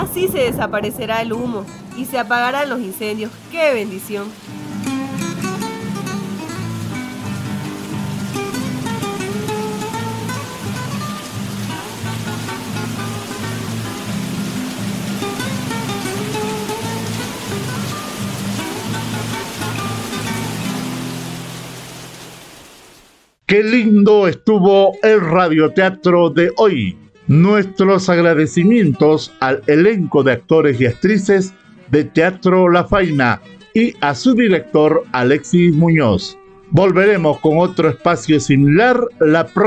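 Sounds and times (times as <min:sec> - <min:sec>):
music: 0:00.0 - 0:22.3, 0:23.5 - 0:39.6
rain falling: 0:00.0 - 0:23.4
speech: 0:00.1 - 0:05.0, 0:23.5 - 0:39.6.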